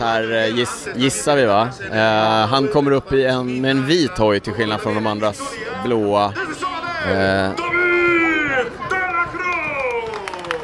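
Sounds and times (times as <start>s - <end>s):
speech: 0.0s - 7.7s
crowd cheering for a cyclist: 6.4s - 10.6s.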